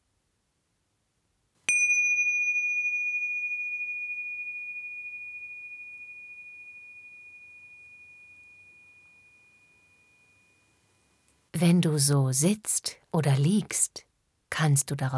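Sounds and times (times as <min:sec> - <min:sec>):
small bell struck to open a meditation exercise: 0:01.7 - 0:10.7
speech: 0:11.6 - 0:15.1.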